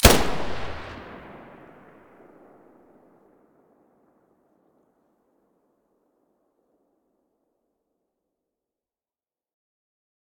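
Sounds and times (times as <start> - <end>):
weapon muzzle blast in stereo: 0.0 - 2.5.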